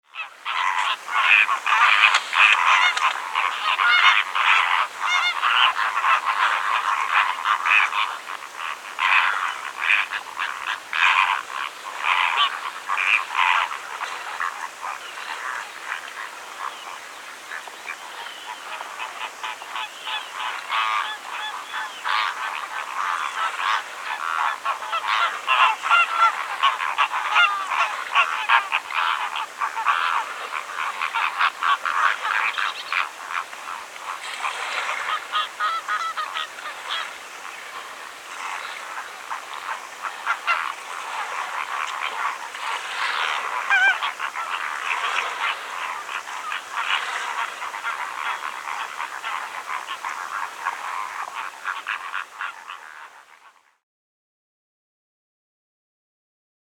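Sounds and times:
greater flamingo calls in Greece: 0.1 - 53.8.

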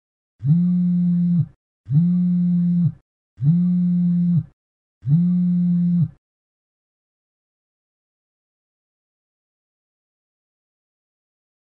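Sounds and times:
cell phone vibrating: 0.4 - 6.2.

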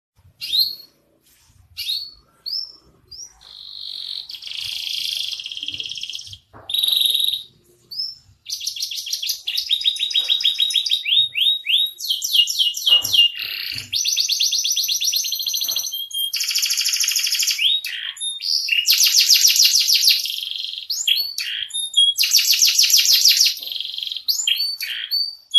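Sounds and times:
male canary singing: 0.3 - 1.1, 1.8 - 25.5.

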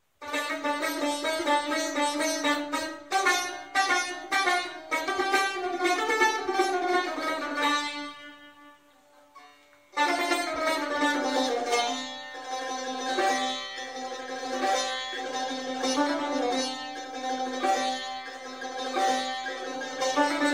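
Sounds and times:
tar instrument playing: 0.2 - 20.5.

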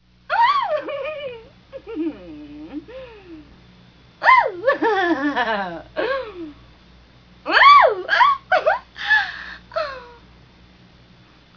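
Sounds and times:
daughter laughing: 0.3 - 2.9, 4.2 - 6.6, 7.5 - 10.2.

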